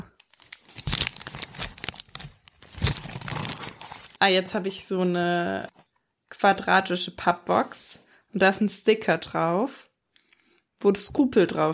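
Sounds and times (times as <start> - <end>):
gift wrapping paper being torn open: 0.0 - 4.2
speech: 4.2 - 5.8, 6.4 - 9.9, 10.8 - 11.7.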